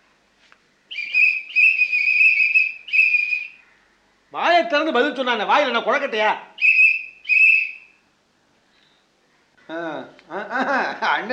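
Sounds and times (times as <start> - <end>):
whistle blasts: 0.9 - 3.6, 6.6 - 8.1
speech: 4.6 - 6.5
laughter: 10.3 - 11.3.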